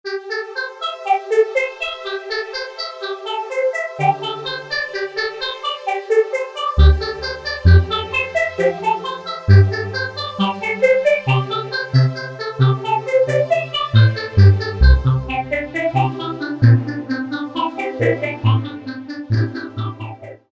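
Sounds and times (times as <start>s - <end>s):
Generalmusic Equinox synthesizer music: 0.2s - 20.5s.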